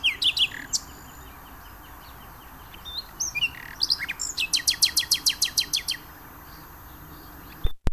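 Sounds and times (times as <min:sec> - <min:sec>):
common nightingale song: 0:00.0 - 0:07.8.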